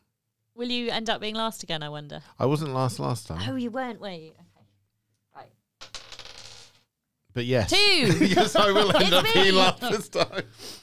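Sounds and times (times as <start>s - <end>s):
speech: 0.6s - 4.5s, 5.4s - 5.6s, 7.4s - 10.8s
dice rattling and clattering across a hard surface: 5.8s - 6.8s
laughter: 8.0s - 10.6s.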